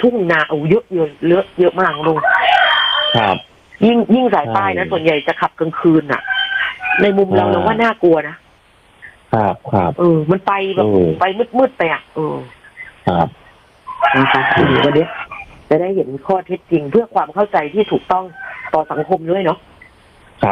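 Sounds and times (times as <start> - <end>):
speech: 0.0 - 2.4, 3.1 - 6.4, 7.0 - 8.4, 9.3 - 13.4, 14.0 - 19.7, 20.4 - 20.5
rooster crowing: 1.9 - 3.4, 6.0 - 7.8, 13.9 - 15.5, 18.1 - 19.2.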